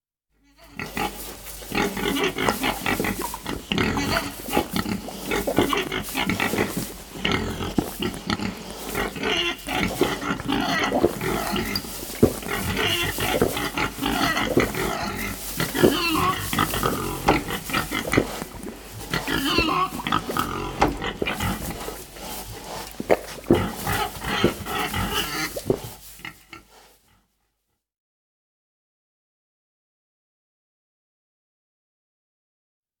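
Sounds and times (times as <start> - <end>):
pig eating: 0.6 - 26.9.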